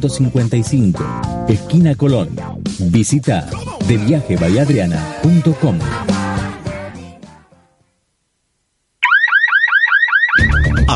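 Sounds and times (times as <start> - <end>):
speech: 0.0 - 6.2
music: 0.0 - 8.0, 10.4 - 10.9
electronic property security alarm whooping: 9.0 - 10.9.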